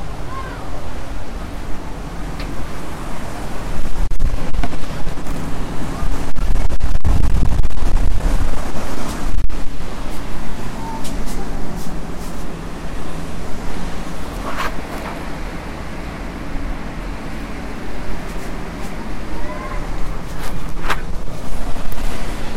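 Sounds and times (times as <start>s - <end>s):
Mediterranean sea waves breaking on shore: 0.0s - 22.5s
gusty wind buffeting the microphone: 0.0s - 22.5s
faint voice murmuring: 10.6s - 12.0s, 18.3s - 20.6s.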